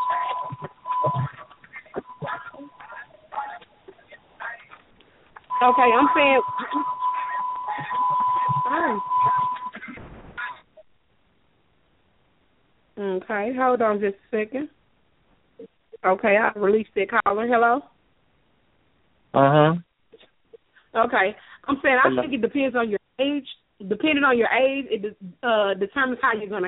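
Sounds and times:
car alarm steady high electronic tone: 0.0s - 2.9s, 5.5s - 9.7s
people talking over a muffled phone line: 0.0s - 3.7s, 5.5s - 9.7s, 21.2s - 22.7s
speech: 5.6s - 6.9s, 13.5s - 14.8s, 16.0s - 17.9s, 19.4s - 19.8s, 21.0s - 26.6s.

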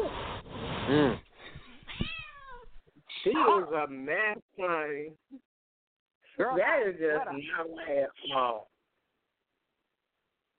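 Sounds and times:
speech: 0.9s - 1.3s, 3.3s - 5.5s, 6.4s - 8.7s
cat meowing: 1.8s - 2.8s.

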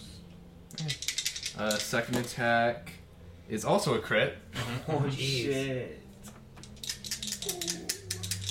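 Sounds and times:
speech: 0.8s - 1.0s, 1.6s - 6.1s
dice rattling: 0.8s - 2.3s, 6.6s - 8.4s.

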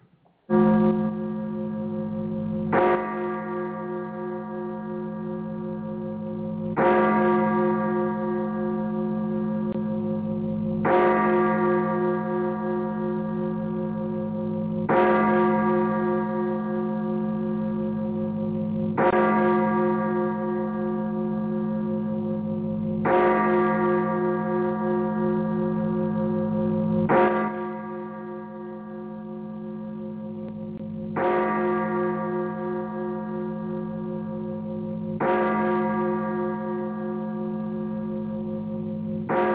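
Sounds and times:
church bells tolling: 0.5s - 39.5s.

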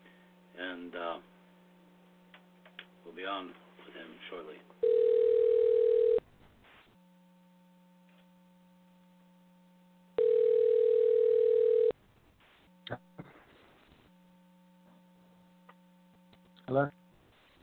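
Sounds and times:
speech: 0.6s - 1.3s, 3.0s - 5.1s, 16.7s - 16.9s
telephone line ringing out as a call is placed: 4.8s - 6.2s, 10.2s - 12.0s.

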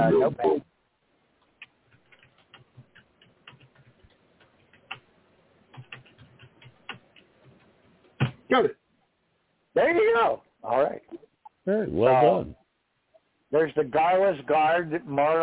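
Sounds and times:
speech: 0.2s - 0.7s, 8.5s - 8.8s, 9.8s - 12.6s, 13.5s - 15.4s
keyboard typing: 1.5s - 5.1s, 5.7s - 8.4s.

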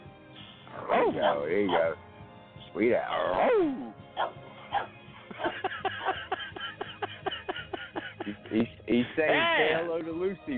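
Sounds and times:
dog barking: 0.8s - 2.0s, 4.2s - 5.0s
speech: 0.8s - 2.1s, 2.8s - 4.8s, 8.3s - 10.5s
laughter: 5.2s - 9.7s.

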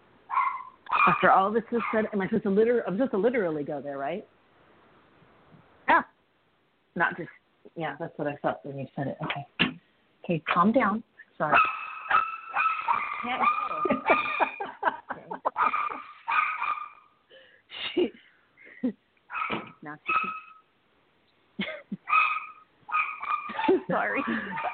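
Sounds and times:
dog barking and yipping excitedly: 0.3s - 2.2s, 11.5s - 14.6s, 15.4s - 17.1s, 19.3s - 20.6s, 22.0s - 24.7s
speech: 1.0s - 4.4s, 7.0s - 9.6s, 10.3s - 11.8s, 13.2s - 14.2s
laughter: 13.7s - 16.0s, 23.5s - 24.7s.

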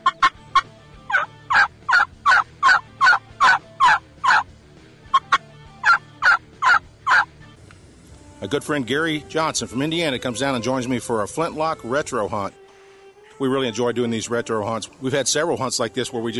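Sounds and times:
wild turkey giving sharp high-pitched clucks and putts: 0.0s - 4.5s, 5.1s - 7.3s
speech: 8.4s - 12.6s, 13.4s - 16.3s.

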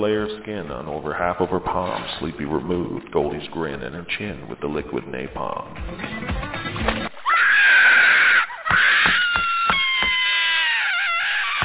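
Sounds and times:
speech: 0.0s - 7.0s
girl screaming in pain: 7.2s - 11.6s.

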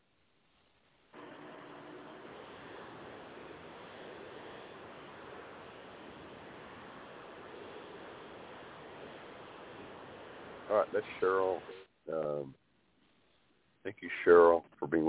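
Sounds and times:
car driving noise over a muffled phone line: 1.1s - 12.3s
speech: 10.7s - 12.6s, 13.8s - 15.0s.

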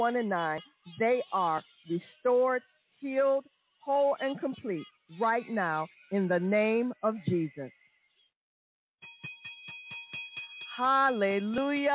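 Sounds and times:
speech: 0.0s - 7.8s, 10.8s - 11.9s
bell ringing with rapid clapper strikes: 9.0s - 11.9s.

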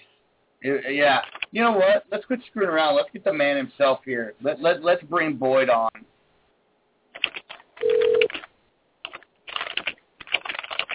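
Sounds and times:
speech: 0.6s - 6.1s
fast loud typing on a computer keyboard: 1.2s - 1.6s, 7.2s - 10.9s.

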